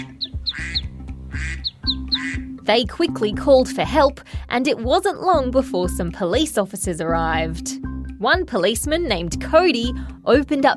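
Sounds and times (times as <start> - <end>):
ducklings quacking: 0.0 - 2.5
speech: 2.7 - 10.7.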